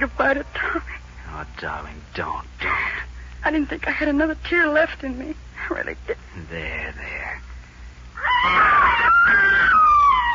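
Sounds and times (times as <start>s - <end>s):
speech: 0.0s - 7.5s, 8.4s - 9.9s
boy screaming from a haymow: 8.2s - 10.3s.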